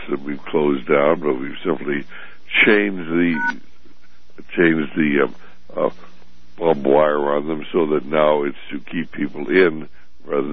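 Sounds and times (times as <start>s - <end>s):
speech: 0.0s - 3.7s, 4.4s - 10.5s
telephone beeps signalling an incoming caller on a phone-in line: 3.3s - 3.6s.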